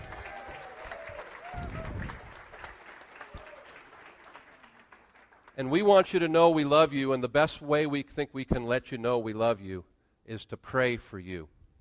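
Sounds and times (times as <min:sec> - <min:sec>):
audience applause for a man back on stage: 0:00.0 - 0:05.6
speech: 0:05.6 - 0:11.6.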